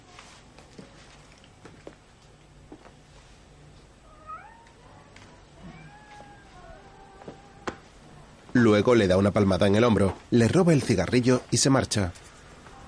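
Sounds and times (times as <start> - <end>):
low steady hum: 0.0 - 12.8
cat meowing: 4.1 - 4.8, 5.6 - 7.9
speech: 8.6 - 12.2.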